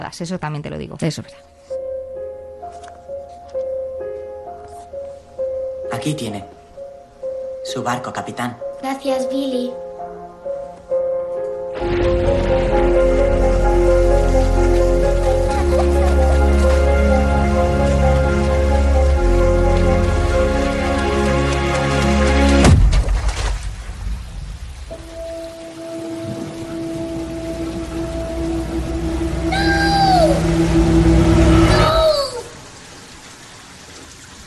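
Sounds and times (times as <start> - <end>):
speech: 0.0 - 1.6, 6.0 - 6.6, 7.7 - 9.8
sustained musical tones: 1.6 - 22.6, 24.9 - 32.0
rain falling: 11.7 - 34.4.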